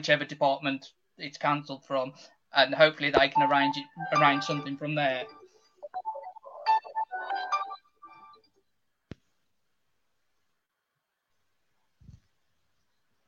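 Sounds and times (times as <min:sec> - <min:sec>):
speech: 0:00.0 - 0:05.4
mobile phone ringtone from an incoming call: 0:03.2 - 0:08.4.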